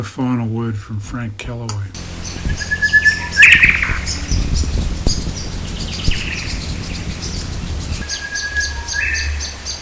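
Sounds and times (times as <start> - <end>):
speech: 0.0 - 2.8
grey shrike-thrush singing whistled phrases: 2.2 - 9.8.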